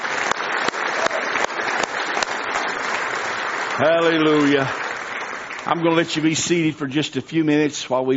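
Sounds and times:
louder hand claps: 0:00.0 - 0:06.0
audience at a morning church service clapping in praise: 0:00.0 - 0:06.7
speech: 0:03.8 - 0:04.8, 0:05.6 - 0:08.1.

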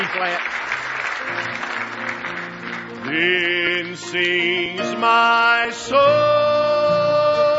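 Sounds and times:
church congregation clapping hands in praise during a worship service: 0:00.0 - 0:04.3
speech: 0:00.2 - 0:00.7, 0:01.3 - 0:02.4, 0:03.1 - 0:07.4.

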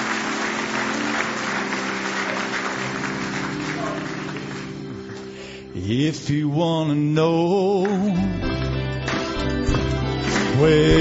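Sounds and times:
church audience applauding in praise during a service: 0:00.0 - 0:05.4, 0:07.8 - 0:11.0
speech: 0:05.8 - 0:08.5, 0:10.6 - 0:11.0.

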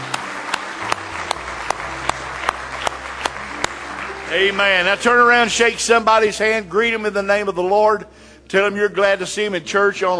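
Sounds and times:
scattered applause: 0:00.0 - 0:06.1
audience clapping in a steady even rhythm: 0:00.0 - 0:06.4
speech: 0:04.3 - 0:10.1.

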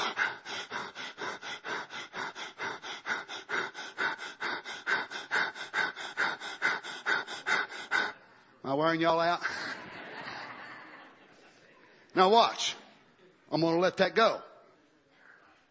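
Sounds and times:
rapid deliberate breathing: 0:00.0 - 0:10.6
speech: 0:08.7 - 0:09.6, 0:12.2 - 0:12.8, 0:13.5 - 0:14.5
laughter: 0:09.4 - 0:12.1.

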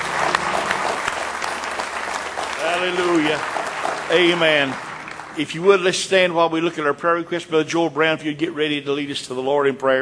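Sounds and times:
congregation clapping in praise during a church service: 0:00.0 - 0:06.8
speech: 0:02.8 - 0:10.0.

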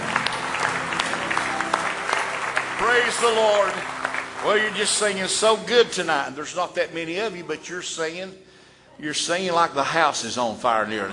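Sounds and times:
congregation clapping hands in praise during a church service: 0:00.0 - 0:06.7
speech: 0:02.9 - 0:11.1.

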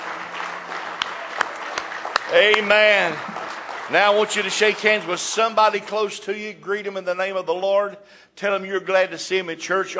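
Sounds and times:
church congregation clapping hands in praise during a service: 0:00.0 - 0:06.5
speech: 0:02.3 - 0:09.9.

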